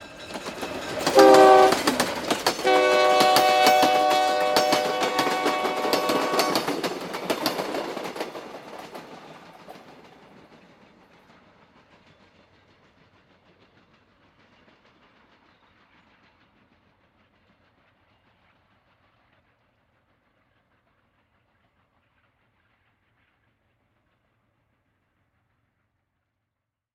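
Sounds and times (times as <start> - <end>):
Altiplano passenger train: 0.0 - 26.2
passenger train whistle: 1.1 - 2.0, 2.6 - 6.9.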